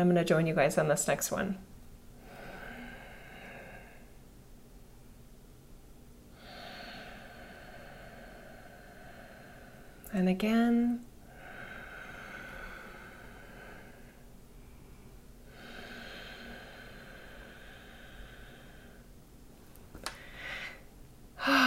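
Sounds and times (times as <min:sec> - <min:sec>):
speech: 0:00.0 - 0:01.7, 0:10.2 - 0:11.1
slow deep breaths through the nose in a breathing exercise: 0:02.2 - 0:04.3, 0:06.3 - 0:10.0, 0:11.2 - 0:19.2, 0:20.1 - 0:21.6.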